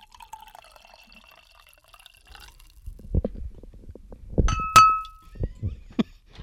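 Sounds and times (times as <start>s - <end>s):
drink pouring into a wine glass: 0.0s - 3.0s
faint fizzing: 0.0s - 3.1s
bright glassy clink: 4.5s - 5.3s.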